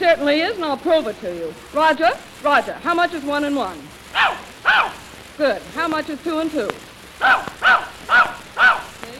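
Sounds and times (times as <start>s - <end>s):
speech: 0.0s - 8.2s
dog barking: 4.1s - 5.0s, 7.2s - 9.0s.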